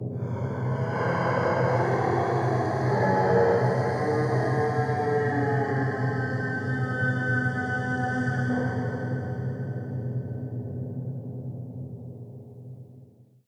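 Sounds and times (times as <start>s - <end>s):
wind creature sound: 0.2s - 10.3s.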